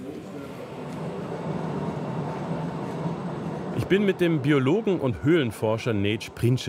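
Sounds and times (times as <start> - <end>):
small tourist train rolling through an underground cave: 0.0 - 6.6
speech: 3.8 - 6.6.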